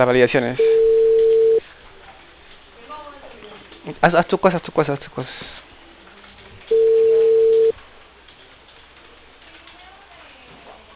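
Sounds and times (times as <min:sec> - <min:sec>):
speech: 0:00.0 - 0:00.8, 0:03.9 - 0:05.6
telephone ringback tone while a call is placed: 0:00.6 - 0:01.6, 0:06.7 - 0:07.7.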